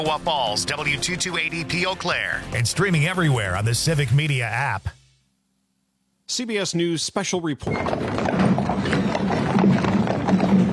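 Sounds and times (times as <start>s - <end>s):
speech: 0.0s - 5.0s, 6.3s - 9.1s
horse hooves clip-clopping on pavement pulling a caisson: 7.7s - 10.7s.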